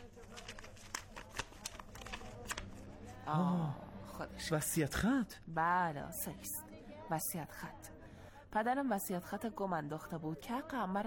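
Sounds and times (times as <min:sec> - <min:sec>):
notebook pages being leafed through: 0:00.0 - 0:03.2
speech: 0:03.3 - 0:07.9, 0:08.5 - 0:11.0.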